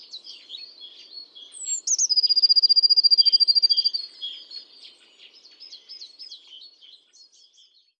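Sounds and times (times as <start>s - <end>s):
birds chirping and twittering: 0.0s - 7.9s
Eurasian blue tit Cyanistes caeruleus falling note and trill: 1.6s - 4.5s.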